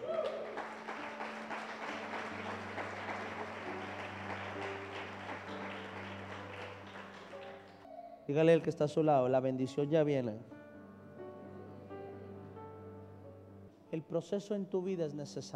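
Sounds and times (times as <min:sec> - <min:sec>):
large crowd applauding: 0:00.0 - 0:07.9
sustained low musical tones: 0:00.4 - 0:07.9, 0:08.5 - 0:14.8
speech: 0:08.3 - 0:10.6, 0:14.0 - 0:15.5.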